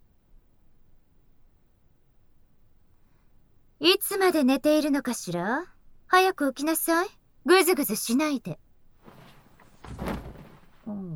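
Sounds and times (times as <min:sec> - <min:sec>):
speech: 0:03.8 - 0:08.6
person tumbling out of a bed onto the floor: 0:09.0 - 0:10.9.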